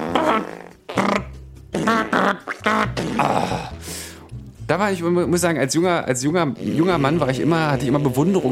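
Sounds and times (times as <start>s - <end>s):
person vocally imitating a man farting at a urinal: 0.0s - 3.7s, 6.5s - 8.5s
speech: 4.8s - 8.5s.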